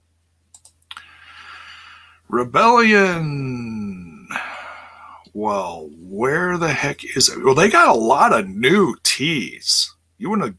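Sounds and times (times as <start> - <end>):
computer mouse clicking on a shopping website: 0.5 - 1.0
speech: 2.3 - 3.8, 5.4 - 10.5.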